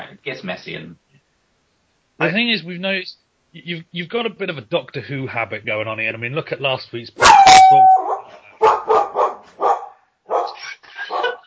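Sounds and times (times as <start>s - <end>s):
speech: 0.2s - 1.0s, 2.2s - 8.0s
dog barking: 7.2s - 11.4s
laughter: 10.6s - 11.4s.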